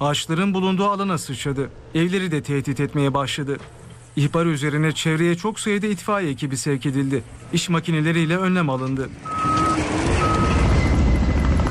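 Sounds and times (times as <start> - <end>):
speech: 0.0 - 9.5
helicopter flying over a wildfire: 9.1 - 11.6.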